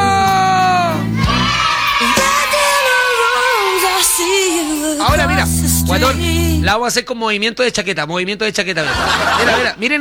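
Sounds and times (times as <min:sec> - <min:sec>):
loud crowd shouting and yelling: 0:00.0 - 0:05.3
speech: 0:05.9 - 0:09.9
laughter: 0:08.8 - 0:09.8.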